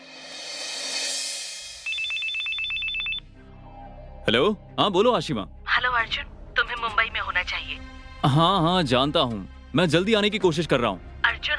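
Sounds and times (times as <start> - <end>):
telephone ringing with a rapid electronic trill: 1.8 - 3.2
speech: 4.3 - 11.1.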